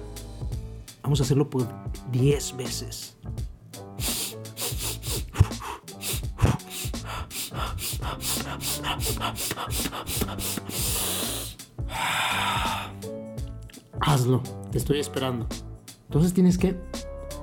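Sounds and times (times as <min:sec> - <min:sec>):
speech: 0:01.1 - 0:03.4, 0:08.2 - 0:13.0, 0:14.0 - 0:16.9
rapid forceful nose breathing in a breathing exercise: 0:04.0 - 0:13.1.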